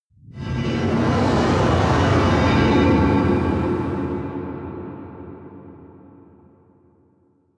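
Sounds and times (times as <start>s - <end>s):
sci-fi wind whoosh: 0.3s - 5.3s.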